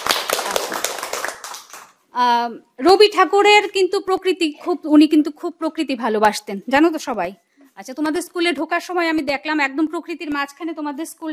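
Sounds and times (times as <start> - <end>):
audience clapping for a singer at a school: 0.0 - 2.0
speech: 2.2 - 11.3.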